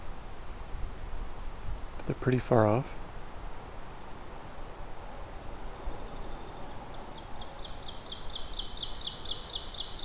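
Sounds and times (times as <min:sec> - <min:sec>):
steady hiss: 0:00.0 - 0:10.0
speech: 0:02.1 - 0:03.0
ovenbird singing in a mature forest: 0:05.8 - 0:10.0.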